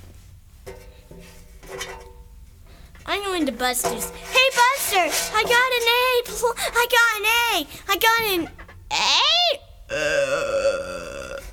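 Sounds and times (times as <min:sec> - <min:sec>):
speech: 0:03.4 - 0:09.2, 0:09.9 - 0:10.5
loud burp: 0:09.9 - 0:11.5.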